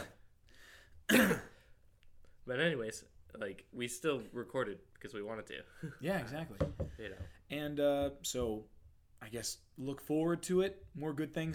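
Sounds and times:
speech: 1.1 - 1.5, 2.5 - 11.5
harsh throaty cough: 1.1 - 1.6.

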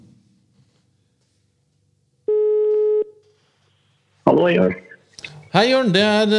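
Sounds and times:
telephone ringing tone while placing a call: 2.3 - 3.1
speech: 4.4 - 4.8, 5.5 - 6.3.

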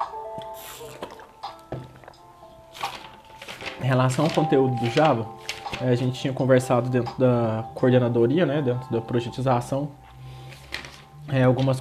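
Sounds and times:
person sipping and gulping water: 0.4 - 2.2
speech: 3.8 - 10.0, 11.3 - 11.7.

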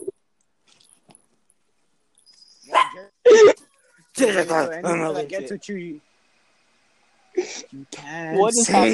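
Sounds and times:
dog barking: 2.7 - 3.1
speech: 4.2 - 6.1, 7.5 - 8.9.

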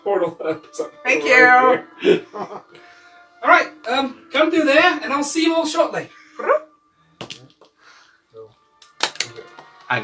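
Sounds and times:
speech: 0.0 - 2.8, 3.4 - 6.6, 9.9 - 10.0
laughter: 2.0 - 2.8
small dog barking: 6.4 - 6.6.

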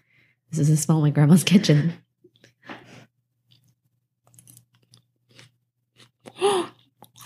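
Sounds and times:
speech: 0.5 - 2.0
crunchy chewing of water chestnut: 3.5 - 7.2.

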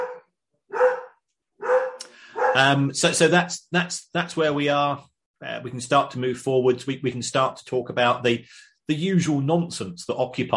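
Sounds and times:
dog barking at postman arriving: 0.0 - 2.7
speech: 2.6 - 10.5.

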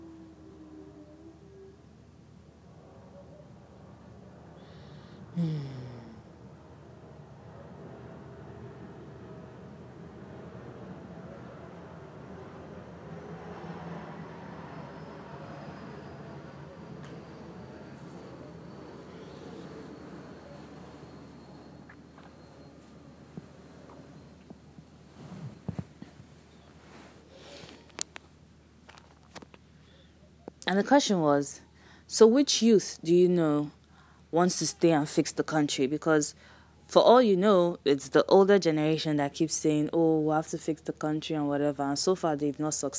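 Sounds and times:
aeroplane roar overhead: 6.2 - 24.4
speech: 30.7 - 31.6, 32.2 - 42.9.

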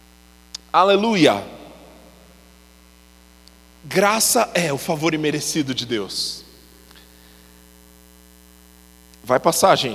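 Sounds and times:
broad constant electrical hiss: 0.0 - 9.9
electrical hum with low buzzing drone: 0.0 - 9.9
speech: 0.7 - 1.6, 3.8 - 6.4, 9.3 - 9.9.

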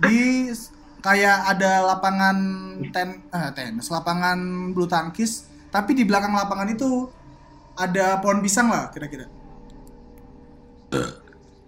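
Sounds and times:
speech: 0.0 - 7.2, 7.8 - 9.4, 10.9 - 11.2
burp: 10.9 - 11.4.

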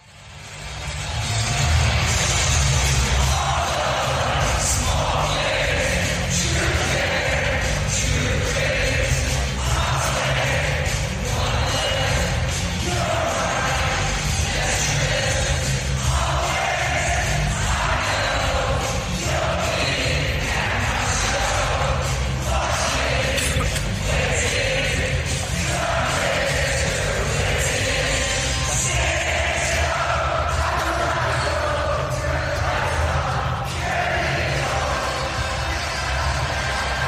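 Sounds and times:
hockey arena crowd cheering and singing: 0.0 - 37.0.

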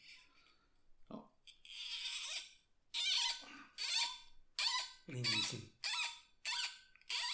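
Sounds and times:
crumbling cork being pulled from a wine bottle: 1.6 - 7.3
speech: 5.1 - 5.8.

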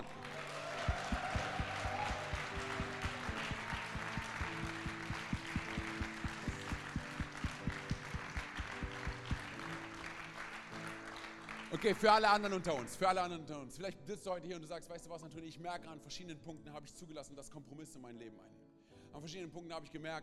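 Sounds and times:
large crowd clapping and cheering: 0.0 - 13.0
steady rhythmic beat and low musical tones: 0.8 - 9.4
speech: 11.8 - 20.2.

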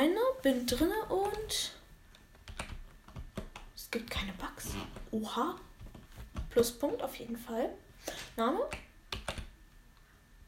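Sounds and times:
speech: 0.4 - 1.8, 3.9 - 5.7, 6.6 - 8.9
clacky keystrokes on a gaming keyboard: 2.4 - 3.7, 8.7 - 9.5.

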